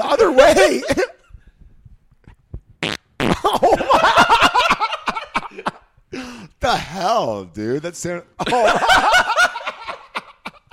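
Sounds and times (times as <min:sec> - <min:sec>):
speech: 0:00.2 - 0:01.1, 0:07.0 - 0:09.4
fart: 0:02.8 - 0:03.4
laughter: 0:03.5 - 0:05.8, 0:08.4 - 0:10.7.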